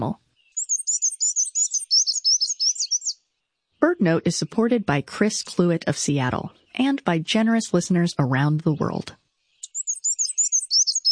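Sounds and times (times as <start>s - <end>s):
speech: 0.0s - 0.2s, 4.0s - 9.2s
black-and-white warbler singing: 0.0s - 11.1s.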